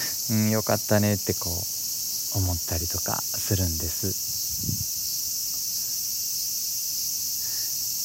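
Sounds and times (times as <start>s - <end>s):
cicadas chirping: 0.0s - 8.0s
speech: 0.3s - 4.9s.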